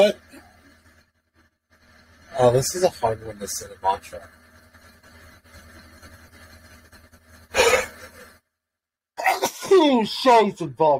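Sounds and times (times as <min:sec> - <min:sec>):
speech: 0:00.0 - 0:00.2, 0:02.4 - 0:04.4, 0:09.8 - 0:10.9
sharp exhalation: 0:07.4 - 0:08.4
loud sneeze into palm: 0:07.5 - 0:08.1, 0:09.2 - 0:09.8.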